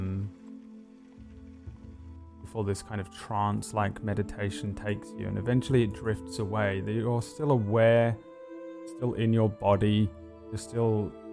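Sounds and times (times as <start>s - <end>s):
wooden cart carriage bumping: 0.0s - 3.4s
wooden cart rumbling: 0.0s - 4.8s
light drizzling rain pattering: 0.0s - 8.2s, 8.9s - 11.3s
speech: 2.5s - 8.3s, 9.0s - 11.2s.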